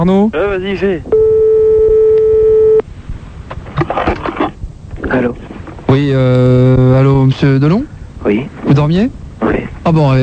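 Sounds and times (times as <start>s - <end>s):
speech: 0.0s - 1.2s, 5.1s - 10.2s
outgoing telephone call ringing tone in a radio studio: 1.2s - 2.8s.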